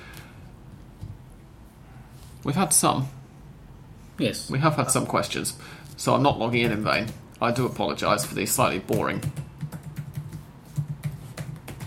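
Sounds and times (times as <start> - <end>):
speech: 2.4 - 3.2, 4.2 - 9.4
typing on a computer keyboard: 8.9 - 11.8.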